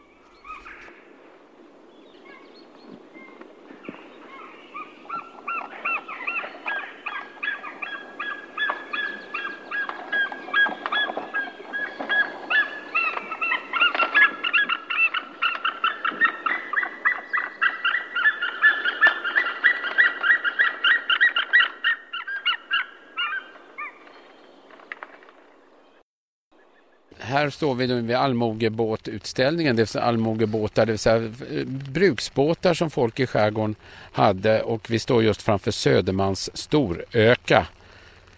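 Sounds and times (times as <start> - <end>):
white-tailed eagle calling on Fjäderholmarna: 3.1 - 24.6
speech: 27.4 - 37.8.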